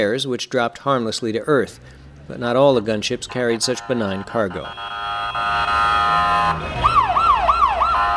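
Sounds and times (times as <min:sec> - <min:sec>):
speech: 0:00.0 - 0:05.8
low rumble of street traffic at busy intersection: 0:00.0 - 0:08.1
ambulance siren at busy intersection: 0:03.8 - 0:08.1.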